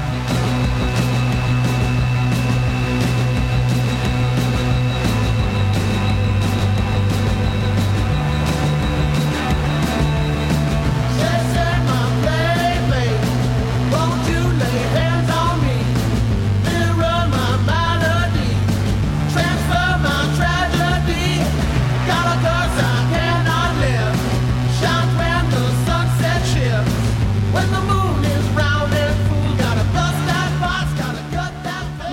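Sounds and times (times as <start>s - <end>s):
dense guitars: 0.0s - 32.1s
pounding shifting bass line: 0.0s - 32.1s
rock song about a werewolf: 0.0s - 32.1s
wailing lead vocal: 10.3s - 16.0s, 16.6s - 26.9s, 27.6s - 32.1s.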